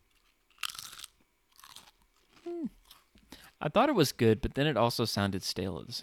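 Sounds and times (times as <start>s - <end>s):
crunching potato chips: 0.1s - 3.2s
mouth sound: 2.4s - 2.8s
speech: 2.5s - 2.8s, 3.6s - 6.0s.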